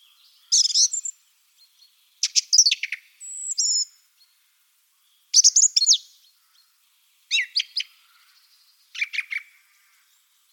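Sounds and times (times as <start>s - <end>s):
song thrush singing rapid clusters of high notes: 0.0s - 4.4s, 5.0s - 10.5s.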